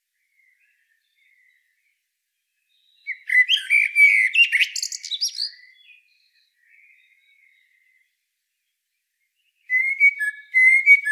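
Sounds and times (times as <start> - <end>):
Common blackbird Turdus merula song phrase: 0.0 - 11.1.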